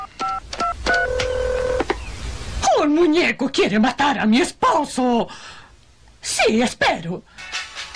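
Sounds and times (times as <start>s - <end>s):
touch-tone keypad beeps from a phone being dialed: 0.0s - 1.8s
speech: 3.0s - 5.6s, 6.2s - 7.5s.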